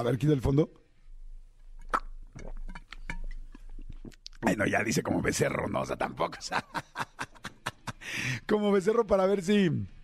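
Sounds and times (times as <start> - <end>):
speech: 0.0 - 0.8, 4.4 - 7.2, 8.1 - 10.0
person drinking water with wet gulps: 1.7 - 4.6
laughter: 6.3 - 8.2.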